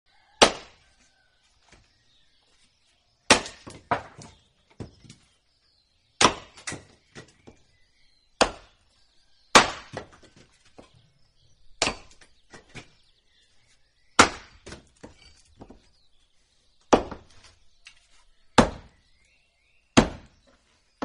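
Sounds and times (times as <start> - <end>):
wood splitting: 0.4 - 0.8, 3.3 - 5.3, 6.2 - 7.6, 8.4 - 8.8, 9.5 - 10.9, 11.8 - 13.0, 14.2 - 15.9, 16.9 - 18.0, 18.6 - 19.0, 20.0 - 21.0.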